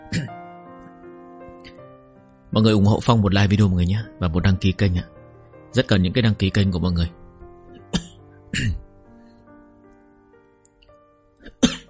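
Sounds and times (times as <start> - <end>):
person with a bad cough coughing: 0.1 - 0.4, 7.8 - 8.8, 11.4 - 11.8
speech: 2.5 - 7.2, 7.9 - 8.8.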